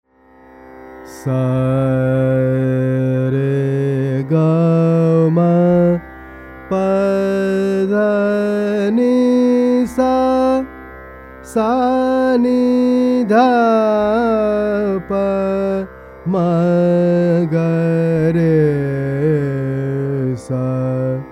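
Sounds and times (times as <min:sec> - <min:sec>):
Indian raga music: 0:00.1 - 0:21.2.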